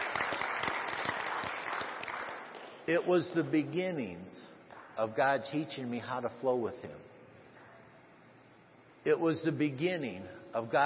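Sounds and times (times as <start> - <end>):
crowd applause: 0.0 - 2.8
speech: 2.9 - 7.1, 9.0 - 10.8.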